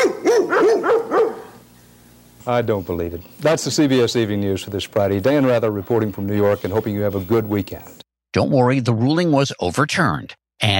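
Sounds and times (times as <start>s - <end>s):
dog barking: 0.0s - 1.6s
speech: 2.4s - 10.7s.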